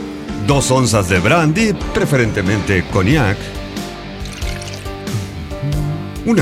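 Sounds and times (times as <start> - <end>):
speech: 0.5 - 3.6
ice cubes clinking into a mixing glass: 4.2 - 4.9.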